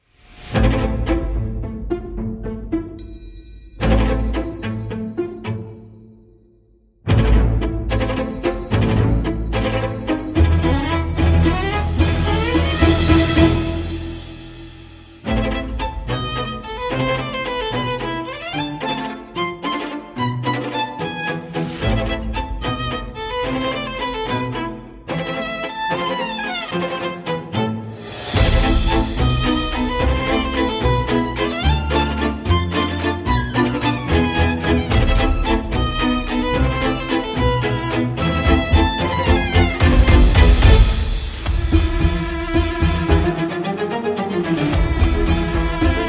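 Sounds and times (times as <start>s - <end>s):
percussion: 0.0s - 6.0s, 7.0s - 46.0s
strings: 0.0s - 46.0s.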